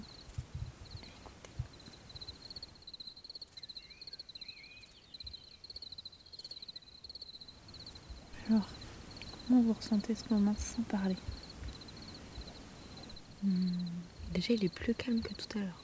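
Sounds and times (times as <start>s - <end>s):
soft low thumps: 0.0s - 2.3s, 7.7s - 15.8s
insects chirping in a pulsing trill at night: 0.0s - 15.8s
speech: 8.5s - 8.8s, 9.5s - 11.4s, 13.4s - 15.8s.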